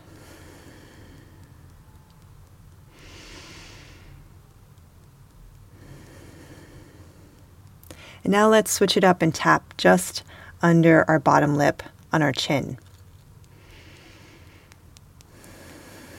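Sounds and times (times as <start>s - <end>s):
slow airy breathing: 0.0s - 2.2s, 2.8s - 4.4s, 5.7s - 8.3s, 10.2s - 10.6s, 13.5s - 16.1s
steady low hum: 0.0s - 16.1s
speech: 8.0s - 12.8s.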